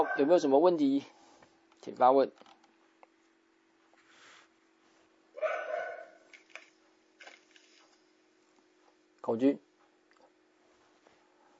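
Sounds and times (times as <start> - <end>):
dog barking faintly: 0.0 - 0.4, 5.3 - 6.3
speech: 0.0 - 1.2, 1.8 - 2.5, 9.3 - 9.7
steady low hum: 0.0 - 11.5.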